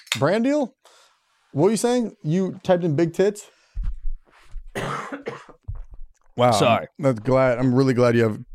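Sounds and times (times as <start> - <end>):
speech: 0.0 - 3.6, 6.4 - 8.5
harsh coughs: 4.7 - 5.8.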